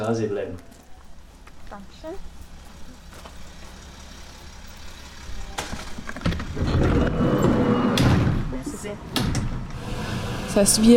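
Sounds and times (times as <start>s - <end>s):
speech: 0.0s - 0.8s, 1.7s - 2.4s, 8.8s - 9.4s, 10.6s - 10.9s
ambulance doors slamming shut: 5.3s - 9.9s.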